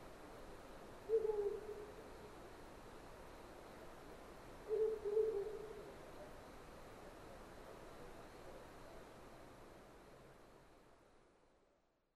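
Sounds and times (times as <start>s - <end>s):
steady background hiss: 0.0s - 12.1s
owl hooting: 1.1s - 2.0s, 4.7s - 6.0s.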